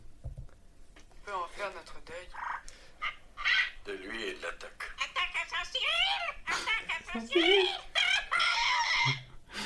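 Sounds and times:
parrot squawking and choking on a pistachio: 0:03.0 - 0:03.9, 0:05.0 - 0:09.4.

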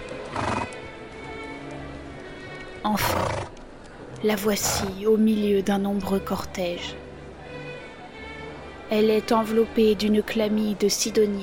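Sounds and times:
horse hooves stamping: 0:00.0 - 0:04.9
speech: 0:02.8 - 0:03.6, 0:04.2 - 0:07.0, 0:08.9 - 0:11.4
horse whinnying: 0:03.0 - 0:03.6.

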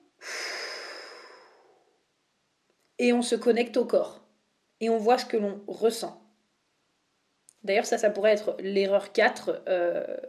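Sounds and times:
deep breath out: 0:00.2 - 0:02.0
speech: 0:03.0 - 0:04.2, 0:04.8 - 0:06.2, 0:07.6 - 0:10.2.

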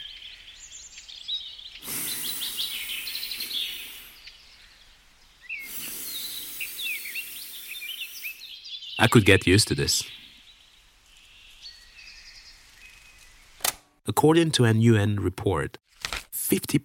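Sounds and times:
gusts of wind rustling leaves: 0:00.0 - 0:09.0, 0:09.8 - 0:13.6
many birds chirping and trilling: 0:00.0 - 0:13.6
speech: 0:09.0 - 0:10.2, 0:14.2 - 0:15.8, 0:16.5 - 0:16.8.

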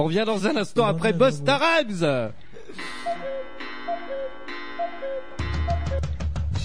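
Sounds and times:
speech: 0:00.0 - 0:03.4
cuckoo clock two-note cuckoo call: 0:02.8 - 0:06.2.

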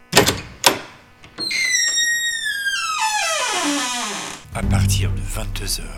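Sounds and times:
door slowly swinging open with a long loud creak: 0:00.1 - 0:04.5
speech: 0:04.6 - 0:05.9.

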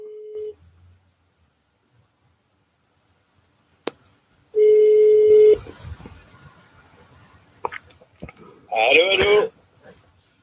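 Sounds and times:
short steady phone tone on speakerphone: 0:00.0 - 0:00.6, 0:04.6 - 0:05.6.

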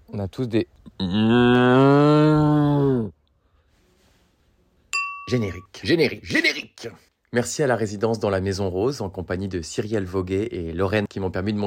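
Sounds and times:
speech: 0:00.1 - 0:03.2, 0:05.3 - 0:11.6
person imitating pigeon cooing: 0:00.9 - 0:03.1.

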